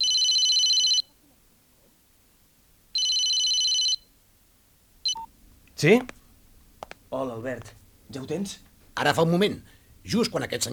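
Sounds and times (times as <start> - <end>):
mobile phone ringing: 0.0 - 1.1, 2.9 - 4.1, 5.0 - 5.3
speech: 5.8 - 6.2, 7.1 - 10.7.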